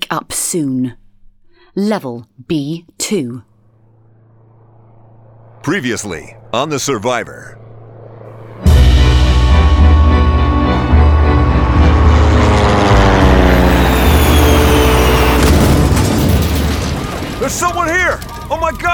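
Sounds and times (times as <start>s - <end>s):
speech: 0.1s - 1.0s, 1.8s - 3.5s, 5.6s - 7.6s, 17.4s - 18.9s
brief low hum: 2.3s - 17.4s
roaring rumble with whining, shifting airplane engine tones: 3.5s - 18.9s
loud airplane crash: 8.6s - 18.9s.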